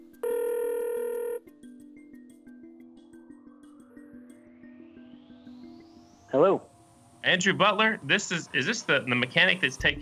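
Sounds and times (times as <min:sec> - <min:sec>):
ringback tone on an outgoing phone call: 0:00.2 - 0:01.5
speech: 0:06.4 - 0:10.0.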